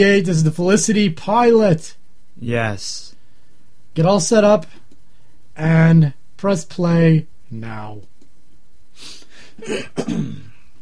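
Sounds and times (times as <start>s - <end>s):
speech: 0.0s - 3.2s, 4.0s - 4.8s, 5.6s - 8.1s, 9.0s - 10.5s
person clearing throat: 9.6s - 10.7s.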